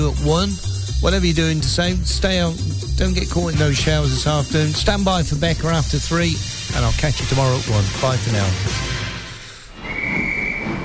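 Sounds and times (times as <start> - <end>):
speech: 0.0 - 9.0
departing train sound effect rumbling and hissing: 4.0 - 10.8
high whistle-like tone: 9.7 - 10.8.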